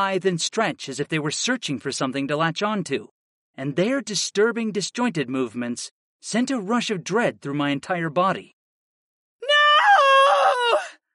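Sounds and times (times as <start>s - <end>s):
speech: 0.0s - 8.6s
woman's blood-curdling scream: 9.4s - 11.0s.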